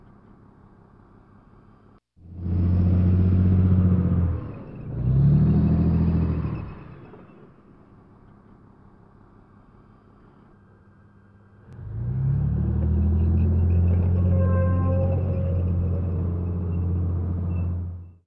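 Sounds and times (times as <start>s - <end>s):
tank moving: 2.3s - 7.8s, 11.7s - 18.2s.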